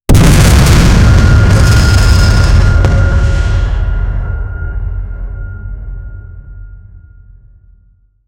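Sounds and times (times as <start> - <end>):
artillery fire: 0.1 - 4.6.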